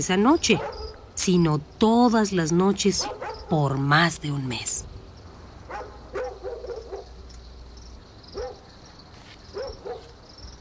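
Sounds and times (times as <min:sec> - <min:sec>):
speech: 0:00.0 - 0:04.9
low steady rumble: 0:00.0 - 0:10.6
dogs barking at night: 0:00.5 - 0:01.2, 0:03.0 - 0:03.5, 0:05.6 - 0:07.2, 0:08.3 - 0:08.8, 0:09.5 - 0:10.2.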